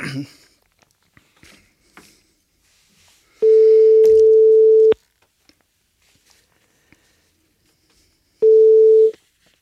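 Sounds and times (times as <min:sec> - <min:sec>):
telephone busy signal on a live radio broadcast: 0:03.4 - 0:05.0, 0:08.4 - 0:09.2.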